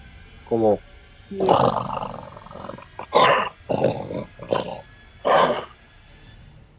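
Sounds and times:
speech: 0:00.5 - 0:02.2
voice imitating an animal's growl: 0:00.5 - 0:05.7.

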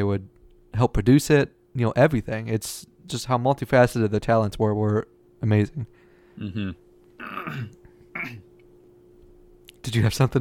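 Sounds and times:
speech: 0:00.0 - 0:06.8, 0:07.4 - 0:08.4, 0:09.8 - 0:10.3
rough throat clearing from something stuck in the throat: 0:06.4 - 0:08.5.

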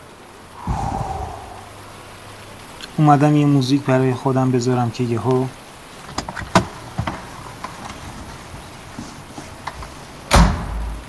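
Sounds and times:
brief rumble: 0:00.6 - 0:02.0
speech: 0:03.0 - 0:05.6
light clicks and knocks: 0:06.0 - 0:10.4
taxi door pulled open and shut on a rainy day: 0:06.1 - 0:08.3, 0:09.6 - 0:10.9.

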